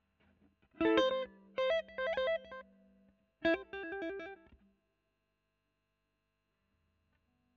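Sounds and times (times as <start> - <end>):
overdriven electric guitar recorded with a Royer microphone: 0.8 - 2.6, 3.4 - 4.6.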